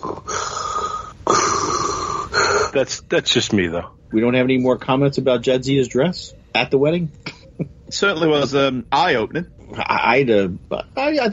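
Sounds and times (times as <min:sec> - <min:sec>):
voice imitating heavy mechanical respirator breathing as a doorbell chime: 0:00.0 - 0:02.8
speech: 0:02.8 - 0:11.3.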